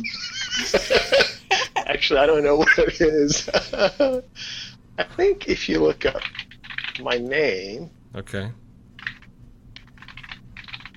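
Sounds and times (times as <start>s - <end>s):
laughter: 0.0s - 5.4s
low hum: 0.0s - 10.9s
speech: 0.7s - 1.3s, 1.9s - 6.4s, 7.0s - 8.6s
typing on a computer keyboard: 6.1s - 7.1s, 9.0s - 10.9s.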